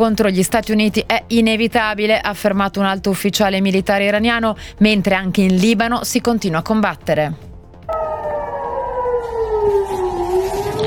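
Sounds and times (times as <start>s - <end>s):
speech: 0.0s - 8.2s
air raid sirens wailing: 7.9s - 10.8s.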